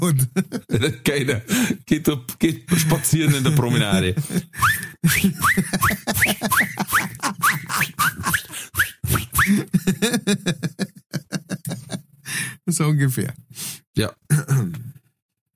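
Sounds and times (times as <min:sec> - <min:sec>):
speech: 0:00.0 - 0:06.6, 0:12.8 - 0:14.8
laughter: 0:00.1 - 0:01.5, 0:02.6 - 0:12.1
voice imitating whistling firework rockets: 0:04.6 - 0:06.3, 0:07.4 - 0:09.6.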